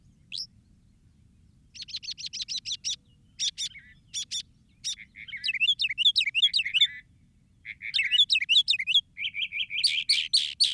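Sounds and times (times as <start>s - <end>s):
northern mockingbird singing varied phrases: 1.8s - 7.0s, 7.7s - 10.7s.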